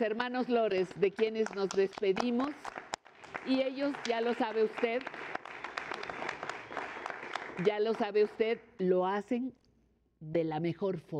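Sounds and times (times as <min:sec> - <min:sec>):
speech: 0:00.0 - 0:02.8, 0:03.4 - 0:05.4, 0:07.6 - 0:09.6, 0:10.2 - 0:11.1
audience applauding dancers: 0:01.0 - 0:08.2.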